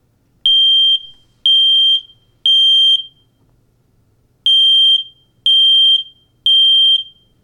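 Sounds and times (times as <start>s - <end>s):
smoke alarm: 0.5s - 3.4s, 4.5s - 7.4s.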